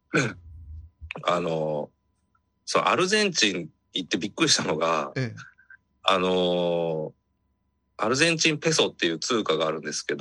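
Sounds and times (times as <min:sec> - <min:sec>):
speech: 0:00.1 - 0:00.4, 0:01.3 - 0:01.9, 0:02.7 - 0:07.2, 0:08.0 - 0:10.1
single short voiced cough: 0:00.1 - 0:00.6
low rough rumble in the throat: 0:00.1 - 0:01.2.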